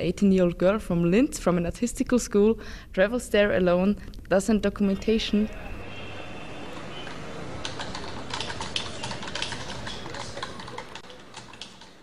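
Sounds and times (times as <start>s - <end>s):
speech: 0.0s - 5.8s
typing on a computer keyboard: 6.7s - 12.0s.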